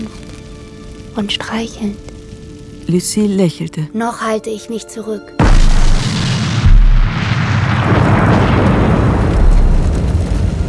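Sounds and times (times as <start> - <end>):
sustained roaring crackling rumble of fire: 0.0 - 3.6, 5.4 - 10.6
speech: 1.2 - 2.1, 2.9 - 5.4
overheated gasoline tank exploding: 5.4 - 10.6.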